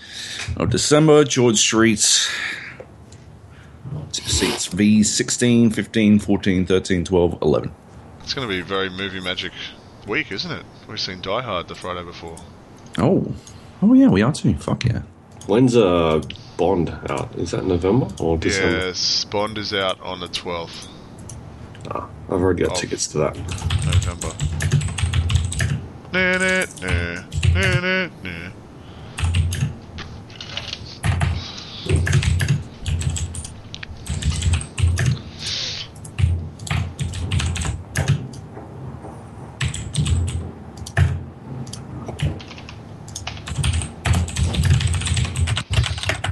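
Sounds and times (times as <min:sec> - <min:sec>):
speech: 0:00.5 - 0:02.6, 0:04.4 - 0:21.0, 0:21.8 - 0:24.8
loud typing on a computer keyboard: 0:23.4 - 0:25.8, 0:26.4 - 0:27.8, 0:29.2 - 0:35.2, 0:35.9 - 0:38.5, 0:39.6 - 0:46.3.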